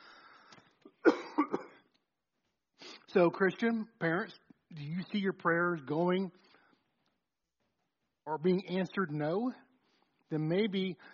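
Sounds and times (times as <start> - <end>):
person coughing: 0.9 - 1.9
speech: 3.1 - 6.4, 8.3 - 9.6, 10.3 - 11.1.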